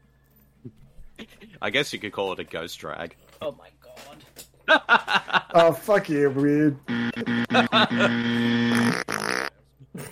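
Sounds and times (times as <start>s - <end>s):
speech: 0.6s - 0.8s, 1.6s - 7.0s, 7.6s - 9.0s
laughter: 4.7s - 5.9s, 7.1s - 8.7s
fart sound effects: 6.9s - 9.5s.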